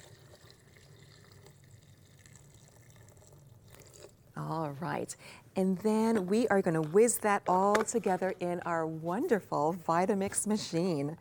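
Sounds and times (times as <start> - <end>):
water pouring into a container over soaked dates and cashews: 0.0 - 4.3
speech: 4.4 - 11.2.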